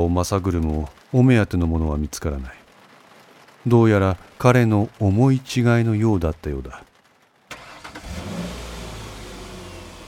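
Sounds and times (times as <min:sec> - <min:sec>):
speech: 0:00.0 - 0:02.6, 0:03.6 - 0:06.9
heavy rain: 0:00.0 - 0:10.0
car engine starting in heavy rain: 0:07.5 - 0:10.0.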